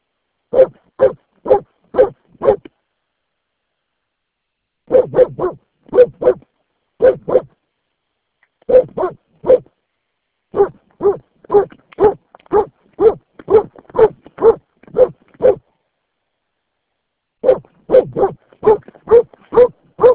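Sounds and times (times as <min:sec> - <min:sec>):
dog barking: 0:00.5 - 0:02.7, 0:04.9 - 0:07.6, 0:08.7 - 0:09.7, 0:10.5 - 0:15.7, 0:17.4 - 0:20.1.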